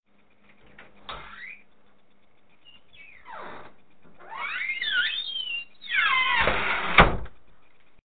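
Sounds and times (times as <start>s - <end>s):
squeaky door: 1.0s - 1.7s, 2.6s - 7.2s.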